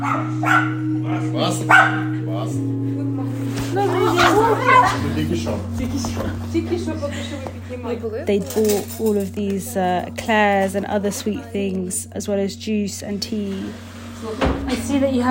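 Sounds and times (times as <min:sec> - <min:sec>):
two dogs barking and yipping: 0:00.0 - 0:02.3
speech: 0:00.0 - 0:02.8, 0:04.5 - 0:15.2
steady low droning tone: 0:00.0 - 0:15.2
laughter: 0:03.3 - 0:08.0.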